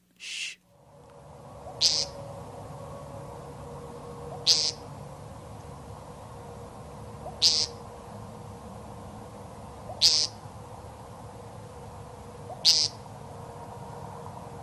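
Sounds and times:
American woodcock call: 0.0 - 0.6, 1.6 - 2.2, 4.3 - 4.9, 7.2 - 7.9, 9.9 - 10.4, 12.4 - 13.0
faint steady hum: 0.0 - 14.6.

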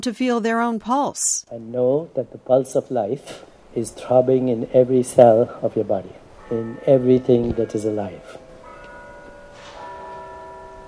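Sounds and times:
speech: 0.0 - 8.4
bell struck at the close of a meditation: 6.4 - 10.8.

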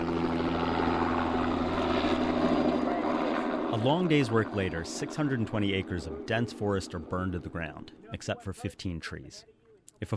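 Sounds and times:
firefighting helicopter engine and rotors droning: 0.0 - 9.1
speech: 3.8 - 10.1.

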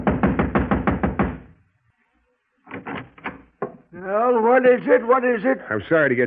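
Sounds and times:
knocking on a wooden apartment door: 0.0 - 1.5
speech: 4.0 - 6.2.

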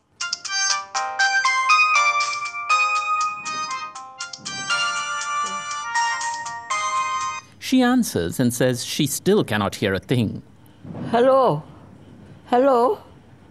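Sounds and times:
electronic phone ringtone as a call is placed: 0.2 - 7.5
speech: 7.7 - 10.5, 11.1 - 11.7, 12.5 - 13.1.

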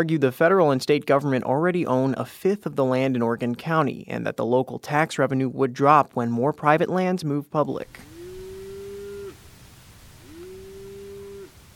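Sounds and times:
speech: 0.0 - 8.1
constant outdoor hiss: 7.8 - 11.7
cow mooing with long low moos: 8.0 - 9.4, 10.2 - 11.6.

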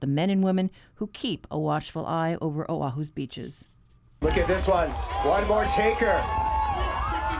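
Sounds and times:
speech: 0.0 - 6.9
crowd on Oahu cheering and shouting at a surfer: 4.2 - 7.3.

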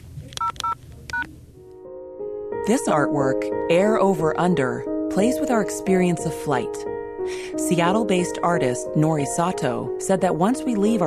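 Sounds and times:
touch-tone telephone keypad beeps dialing an extension and pound key: 0.4 - 1.3
speech: 2.7 - 11.0.

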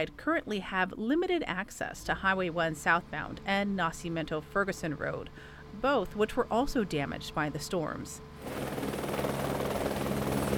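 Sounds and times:
speech: 0.0 - 9.0
helicopter rotor noise: 8.4 - 10.5.

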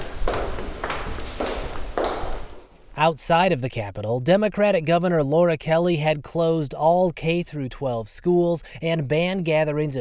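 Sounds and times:
footsteps echoing on a hard floor in a hall: 0.0 - 2.9
speech: 3.0 - 9.9.

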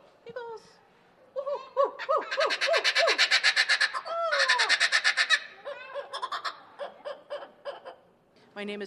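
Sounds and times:
kookaburra laughing call: 1.4 - 8.1.

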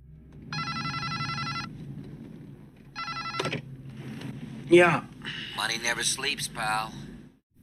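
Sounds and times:
old brick-style cell phone ringing: 0.5 - 1.7, 2.9 - 3.6
speech: 4.7 - 7.1.

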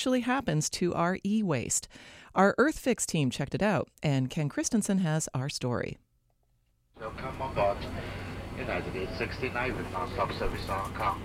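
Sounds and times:
speech: 0.0 - 6.0, 7.0 - 11.2
low hum inside an airplane cabin: 6.6 - 11.2
airplane engine rumble inside the cabin of a plane in flight: 7.0 - 11.2
indistinct voices of passengers murmuring: 7.0 - 11.2.

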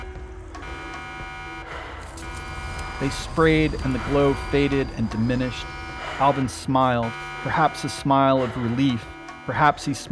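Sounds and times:
pulsating electronic alarm tone with bright harmonics: 0.0 - 10.1
low rumble: 1.7 - 7.2
speech: 3.0 - 10.1.

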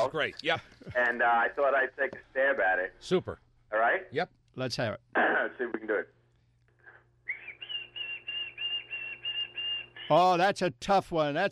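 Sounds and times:
speech: 0.0 - 6.2, 10.1 - 11.5
person whistling an imitation of white-throated sparrow song: 7.3 - 10.2.

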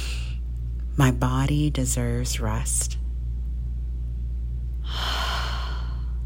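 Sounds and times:
constant low hum: 0.0 - 6.2
speech: 1.0 - 3.0
slow deep inhale during a guided breathing exercise: 4.8 - 6.2.

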